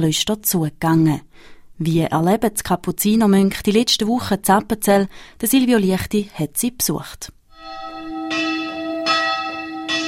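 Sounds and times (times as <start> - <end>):
speech: 0.0 - 7.8
monastery church bells ringing: 7.6 - 10.0.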